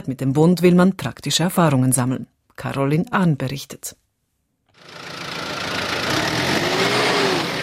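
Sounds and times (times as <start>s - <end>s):
speech: 0.0s - 4.0s
New Holland 110 horsepower diesel tractor starting and running in Bern, Switzerland: 4.8s - 7.6s.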